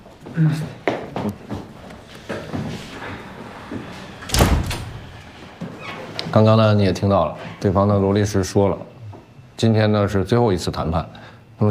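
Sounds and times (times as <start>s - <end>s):
movement sounds: 0.0s - 6.5s
speech: 0.2s - 1.5s, 6.4s - 8.9s, 9.6s - 11.6s
door shutting thud: 4.2s - 5.2s.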